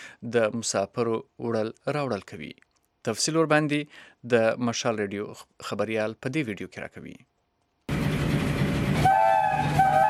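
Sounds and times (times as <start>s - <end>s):
speech: 0.2s - 7.3s
passenger express train running between two cities: 7.9s - 10.0s
sustained train horn: 8.9s - 10.0s.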